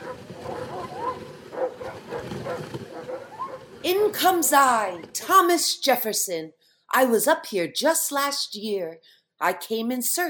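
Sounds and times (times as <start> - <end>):
sled dog team pulling an open sleigh barking and yipping: 0.0 - 3.6
speech: 3.9 - 10.2.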